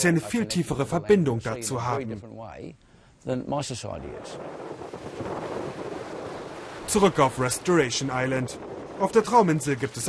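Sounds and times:
speech: 0:00.0 - 0:04.8, 0:06.9 - 0:10.0
tropical storm wind roaring on Restoration Island: 0:03.8 - 0:10.0
metre-high waves on Restoration Island: 0:04.0 - 0:10.0
tropical storm rain on Restoration Island: 0:04.6 - 0:10.0.

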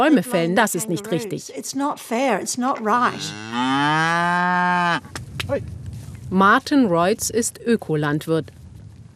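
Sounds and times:
speech: 0:00.0 - 0:08.6
cow mooing on an organic farm: 0:02.9 - 0:05.1.

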